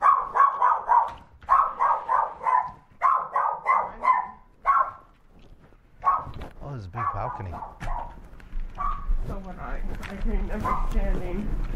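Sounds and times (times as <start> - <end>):
small female dog barking in high-pitched yaps: 0.0 - 5.1, 6.0 - 8.2, 8.8 - 9.1
speech: 7.2 - 7.8, 9.2 - 11.7.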